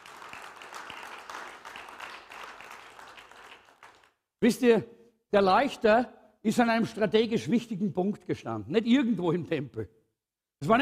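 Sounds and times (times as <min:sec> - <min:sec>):
crowd applauding: 0:00.0 - 0:04.2
speech: 0:04.4 - 0:10.0, 0:10.6 - 0:10.8.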